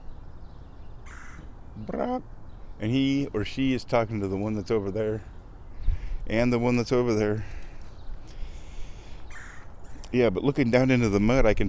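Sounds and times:
flicker woodpecker harsh rasping call: 0:01.0 - 0:02.8, 0:07.6 - 0:10.2
speech: 0:01.8 - 0:05.3, 0:06.3 - 0:07.6, 0:10.1 - 0:11.6.

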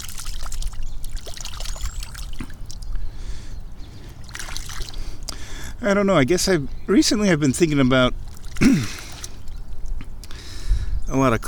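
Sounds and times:
water pouring and trickling while a golf ball is washed: 0:00.0 - 0:03.1, 0:04.1 - 0:05.3, 0:07.9 - 0:10.0
speech: 0:05.8 - 0:08.9, 0:11.2 - 0:11.4.

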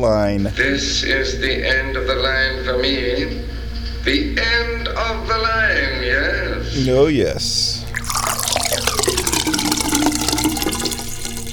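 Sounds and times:
speech: 0:00.0 - 0:07.8
water poured for a cat splashing into a container: 0:07.9 - 0:11.5.

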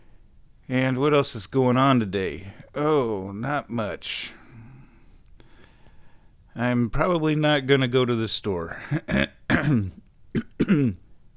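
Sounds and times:
speech: 0:00.7 - 0:04.4, 0:06.6 - 0:11.0
person clearing throat: 0:08.8 - 0:11.1.

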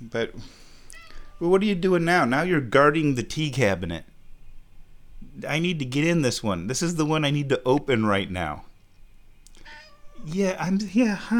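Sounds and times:
low hiss: 0:00.0 - 0:11.3
speech: 0:00.1 - 0:00.7, 0:01.4 - 0:04.1, 0:05.3 - 0:08.7, 0:10.2 - 0:11.3
pet cat meowing: 0:00.9 - 0:01.7, 0:09.6 - 0:10.7.

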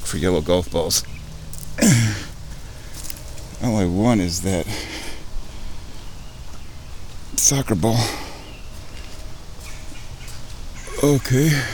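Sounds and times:
birds calling outdoors: 0:00.0 - 0:11.7
speech: 0:00.1 - 0:01.2, 0:01.8 - 0:02.3, 0:03.6 - 0:04.9, 0:07.5 - 0:08.2, 0:11.0 - 0:11.7.

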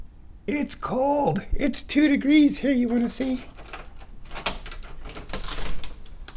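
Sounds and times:
speech: 0:00.5 - 0:03.6
back door clunking and rattling as it swings: 0:02.9 - 0:06.3.

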